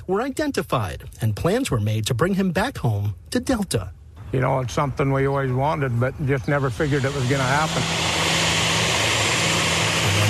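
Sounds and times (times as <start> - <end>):
speech: 0.1 - 8.1
propeller plane engines droning while arriving at an airport: 3.9 - 10.2.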